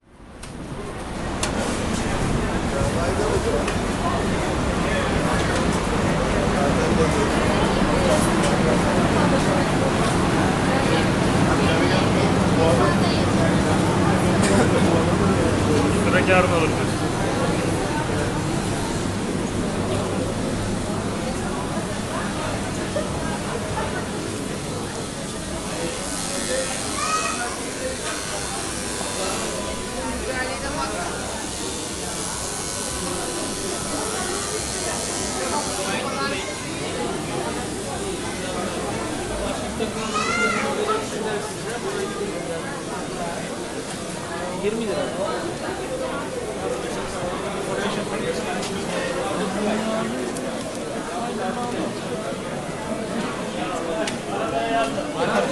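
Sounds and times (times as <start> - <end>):
crowd voices in a spice market interior in Istanbul: 0.0 - 55.5.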